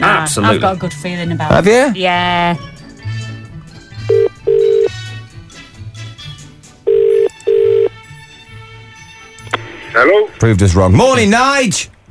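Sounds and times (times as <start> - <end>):
speech: 0.2 - 2.7, 10.0 - 12.0
telephone ringback tone of an outgoing call: 4.0 - 5.0, 6.9 - 8.0.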